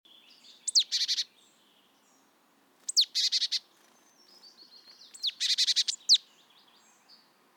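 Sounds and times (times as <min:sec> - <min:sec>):
faint background hiss: 0:00.1 - 0:07.5
marsh tit Poecile palustris calls: 0:00.6 - 0:01.3, 0:02.9 - 0:06.2.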